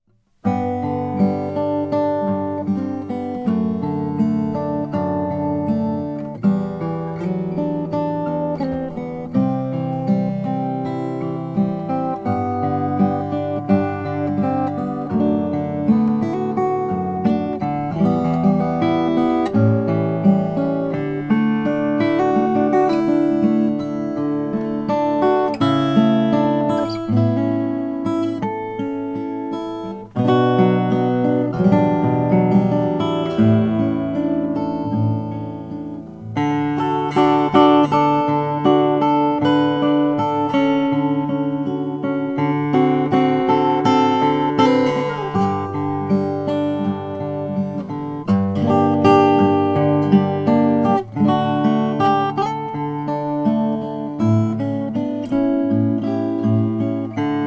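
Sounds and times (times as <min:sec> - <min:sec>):
cocobolo acoustic guitar: 0:00.0 - 0:57.4.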